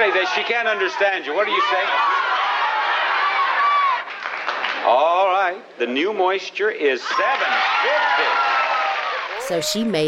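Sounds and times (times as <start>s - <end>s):
speech: 0.0s - 2.4s, 4.8s - 8.5s, 9.5s - 10.0s
game show studio audience cheering and yelling: 0.0s - 4.3s, 7.0s - 9.6s.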